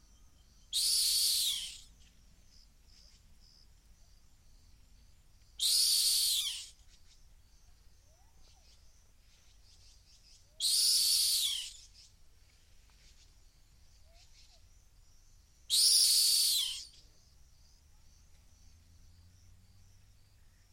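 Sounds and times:
soft insect hum: 0.0s - 20.7s
rock hyrax giving harsh high-pitched shrieking calls at the edge of a gorge in the Masai Mara: 0.8s - 1.8s, 5.6s - 6.7s, 10.6s - 11.8s, 15.7s - 16.9s.

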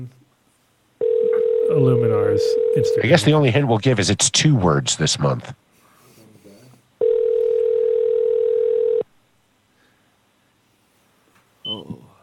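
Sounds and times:
speech: 0.0s - 0.2s, 1.7s - 5.6s
phone ringback tone as a call is placed: 1.0s - 3.1s, 7.0s - 9.0s.

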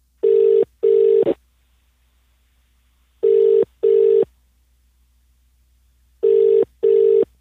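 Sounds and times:
mobile phone line ringing tone: 0.2s - 1.2s, 3.2s - 4.3s, 6.2s - 7.3s.

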